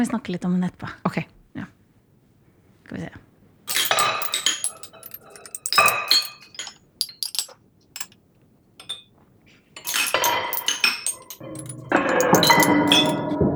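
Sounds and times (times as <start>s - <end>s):
speech: 0.0s - 1.8s, 2.9s - 3.3s
cutlery and dishes clinking: 3.7s - 8.2s, 8.8s - 9.0s, 9.8s - 13.4s.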